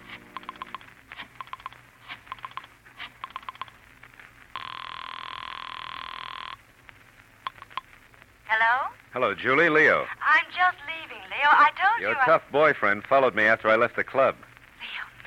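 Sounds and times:
buzzing telephone ring: 4.6 - 6.6
speech: 8.9 - 14.5.

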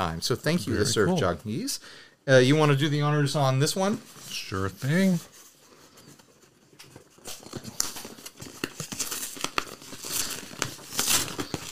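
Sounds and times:
speech: 0.0 - 5.3
crinkling packaging being unwrapped: 4.9 - 11.7.

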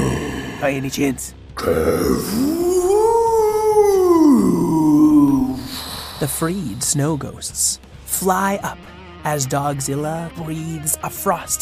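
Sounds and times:
speech: 0.6 - 2.7, 6.2 - 11.6
dog howling: 2.2 - 5.7.

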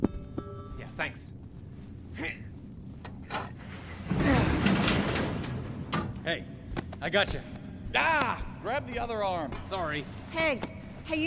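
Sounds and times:
speech: 1.0 - 1.4, 2.2 - 2.5, 6.3 - 11.2
elevator door sliding open with mechanical clunks and scrapes: 3.2 - 6.2.

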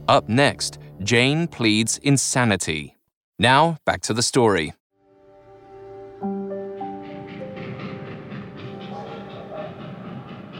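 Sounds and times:
speech: 0.1 - 4.8
passing train rumble and clatter: 6.1 - 10.5.

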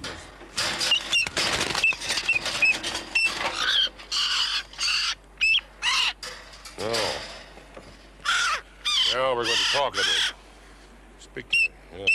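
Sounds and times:
bird squawking: 0.9 - 6.2, 8.2 - 10.4, 11.4 - 12.1
speech: 9.7 - 10.4, 11.4 - 12.1.

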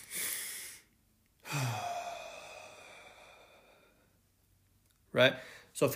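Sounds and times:
person doing a breathing exercise with quick inhales and a long exhale: 0.0 - 4.3, 5.4 - 5.8
speech: 5.2 - 5.9.

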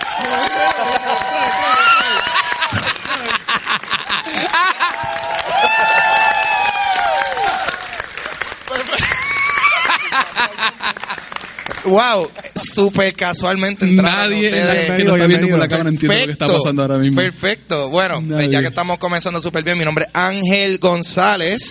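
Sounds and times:
live crowd cheering with whoops and shouts: 0.0 - 11.2
live crowd applause: 0.0 - 12.6
people chuckling: 2.3 - 5.2, 8.8 - 11.4
speech: 11.9 - 21.6.

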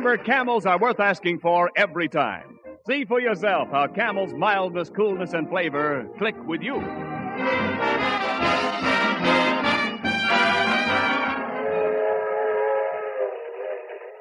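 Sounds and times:
speech: 0.0 - 7.8
train whistle at suburban railroad station: 7.8 - 13.4.

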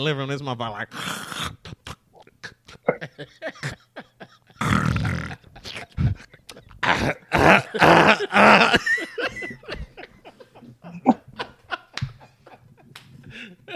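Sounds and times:
speech: 0.0 - 1.9, 3.2 - 3.8, 7.4 - 8.8
person imitating snoring: 0.9 - 2.3, 4.6 - 6.2
quick clicking throat sounds: 0.9 - 3.0, 4.6 - 8.2
laughter: 2.7 - 13.7.

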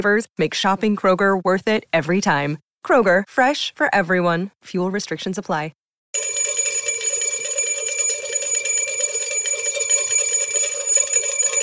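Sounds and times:
speech: 0.0 - 6.3
bell ringing: 6.2 - 11.6.

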